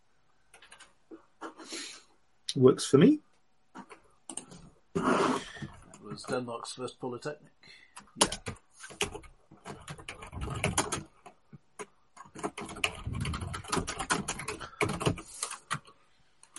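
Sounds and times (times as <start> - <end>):
typing on a quiet computer keyboard: 0.5 - 1.0, 7.9 - 16.5
speech: 2.6 - 3.3, 6.2 - 8.6.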